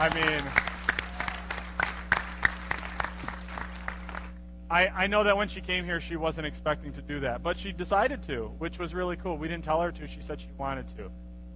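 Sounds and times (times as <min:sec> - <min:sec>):
speech: 0:00.0 - 0:00.7, 0:04.7 - 0:11.2
scattered audience applause: 0:00.0 - 0:04.4
steady low hum: 0:00.0 - 0:11.5.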